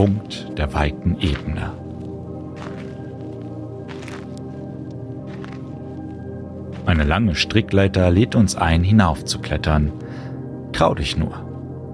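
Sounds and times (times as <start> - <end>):
speech: 0.0 - 1.8, 6.9 - 10.0, 10.8 - 11.4
footsteps crunching over twigs and stones: 0.9 - 7.5
steady humming musical drone: 1.7 - 10.7.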